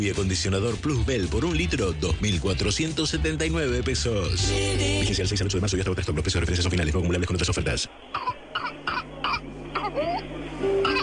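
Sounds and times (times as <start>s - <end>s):
speech: 0.0s - 8.1s
harsh whooping cough coughing: 8.2s - 11.0s.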